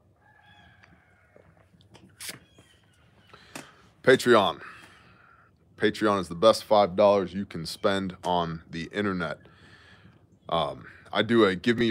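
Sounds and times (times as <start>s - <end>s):
small mouth noises: 1.8s - 2.6s
slurping sip of coffee: 2.0s - 2.6s
speech: 4.0s - 4.7s, 5.8s - 9.5s, 10.5s - 11.8s.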